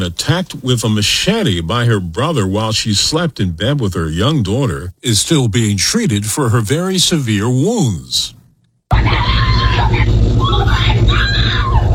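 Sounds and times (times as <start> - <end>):
speech: 0.0 - 10.1
woman screaming: 8.9 - 11.9.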